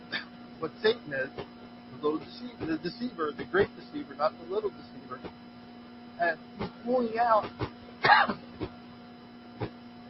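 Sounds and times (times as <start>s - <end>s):
person coughing: 0.1s - 0.3s, 8.0s - 8.6s
throat clearing: 0.1s - 0.3s, 8.0s - 8.8s, 9.6s - 9.8s
speech: 0.6s - 5.5s, 6.2s - 8.8s.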